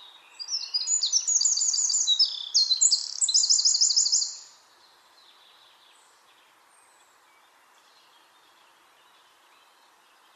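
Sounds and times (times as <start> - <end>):
Eurasian wren Troglodytes troglodytes song with trill: 0.4 - 4.5.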